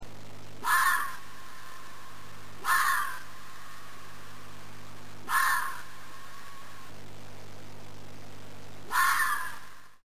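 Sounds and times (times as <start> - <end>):
fox long bark: 0.6 - 1.3, 2.6 - 3.3, 5.2 - 6.0, 8.8 - 9.8.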